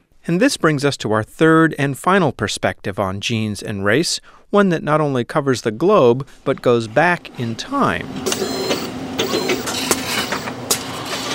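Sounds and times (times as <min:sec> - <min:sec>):
speech: 0:00.2 - 0:08.5
laboratory robots and DNA sequencing machines running as they prepare samples: 0:06.5 - 0:11.3
mechanical clicks and clunks from laboratory machines: 0:08.0 - 0:11.3.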